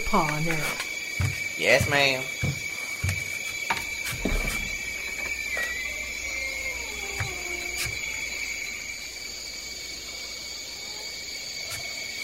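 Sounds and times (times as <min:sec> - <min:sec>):
speech: 0:00.0 - 0:02.4
night chorus of frogs croaking outdoors: 0:00.0 - 0:12.2.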